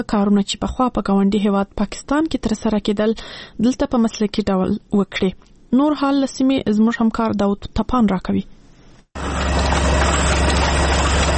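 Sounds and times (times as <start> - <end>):
speech: 0.0 - 8.5
printing machine printing pages of a small book: 9.2 - 11.3.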